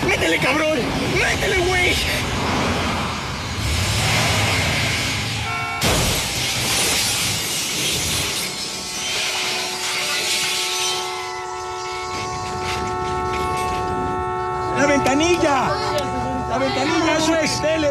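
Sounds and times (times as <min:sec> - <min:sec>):
car engine and road noise of a car racing through the streets of Mexico City: 0:00.0 - 0:17.8
speech: 0:00.3 - 0:02.6, 0:15.2 - 0:15.9, 0:16.6 - 0:17.8
car crash: 0:02.0 - 0:11.2
hissing debris: 0:02.3 - 0:12.7.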